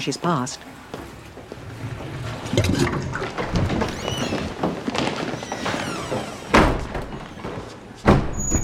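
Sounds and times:
running and flushing water in a men's public lavatory: 0.0 - 7.6
cubicle doors thudding and banging in a public lavatory: 1.8 - 8.6.

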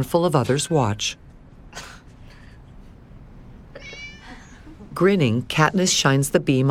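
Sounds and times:
speech: 0.0 - 1.9, 5.0 - 6.6
cat meowing: 3.8 - 4.6.

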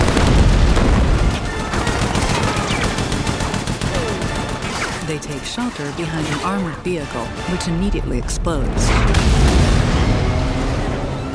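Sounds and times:
heavy gunfire from a large gun: 0.0 - 6.2, 8.9 - 11.0
speech: 5.2 - 9.4.

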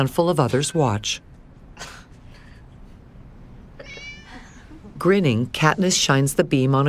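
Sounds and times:
speech: 0.0 - 2.0, 5.0 - 6.8
cat meowing while chasing light: 3.8 - 4.6.

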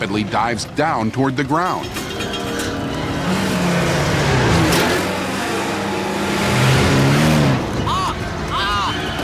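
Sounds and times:
speech: 0.0 - 2.0
car engine sputtering and revving unevenly: 0.0 - 9.2.

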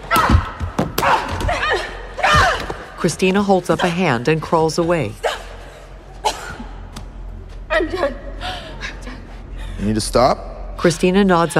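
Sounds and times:
punches and kicks landing in a fight inside a training ring: 0.0 - 2.9
speech: 3.0 - 5.2, 9.9 - 11.5.

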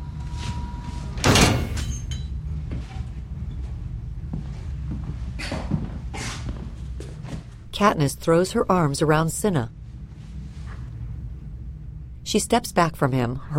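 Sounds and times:
low steady rumble: 0.0 - 13.5
heavy metal door clunking shut: 1.2 - 2.2
speech: 7.8 - 9.8, 12.3 - 13.5.

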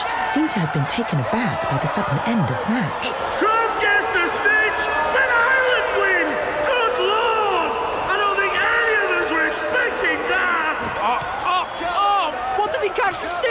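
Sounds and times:
dense crowd of supporters cheering and screaming in a big stadium: 0.0 - 13.4
speech: 0.3 - 4.9.

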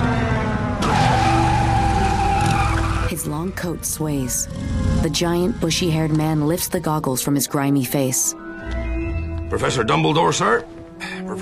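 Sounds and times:
motorcycle tire screeching while skidding along street: 0.0 - 3.2
motorcycle engine roaring: 0.0 - 6.7
speech: 3.6 - 8.8, 9.5 - 11.4.

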